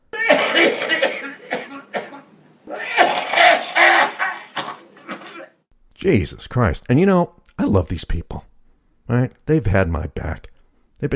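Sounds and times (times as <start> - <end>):
voice mimicking wet phlegm-filled throat clearing: 0.2 - 5.6
speech: 6.0 - 8.5, 9.1 - 11.1.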